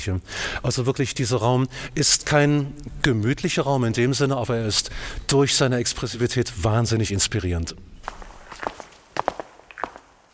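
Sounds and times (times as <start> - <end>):
speech: 0.0 - 8.2
footsteps with sharp heel strikes walking along a corridor toward a foyer: 8.0 - 10.3.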